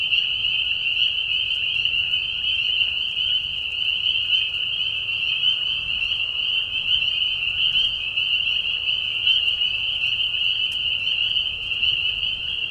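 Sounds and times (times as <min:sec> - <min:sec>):
spring peepers giving mating calls in a marsh at night in spring: 0:00.0 - 0:12.6.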